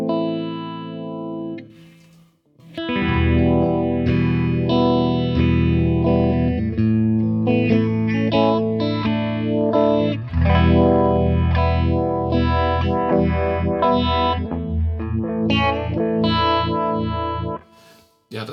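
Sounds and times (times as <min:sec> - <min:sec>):
overdriven electric guitar through a Uni-Vibe-style modulation pedal: 0:00.0 - 0:17.9.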